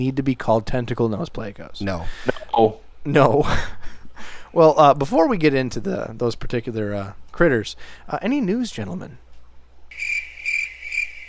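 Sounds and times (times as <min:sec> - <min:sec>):
speech: 0:00.0 - 0:03.8, 0:04.5 - 0:09.2
crickets chirping in a steady high trill: 0:09.9 - 0:11.2.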